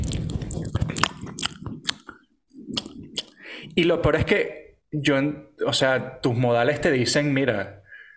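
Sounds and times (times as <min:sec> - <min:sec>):
woman chewing lobster tail open-mouthed beside a microphone: 0:00.0 - 0:03.8
speech: 0:03.8 - 0:07.8.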